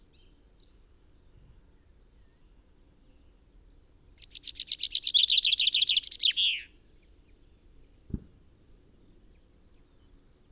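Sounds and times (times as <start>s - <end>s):
common chaffinch Fringilla coelebs singing: 4.2s - 7.4s.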